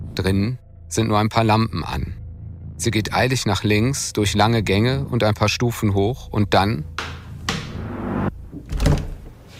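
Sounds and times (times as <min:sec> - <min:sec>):
speech: 0:00.2 - 0:02.2, 0:02.8 - 0:07.1
heavy security door opening in a state police operations centre: 0:07.0 - 0:09.4
heavy security door metallic scrape: 0:07.5 - 0:08.3
heavy security door clunk: 0:08.5 - 0:09.3.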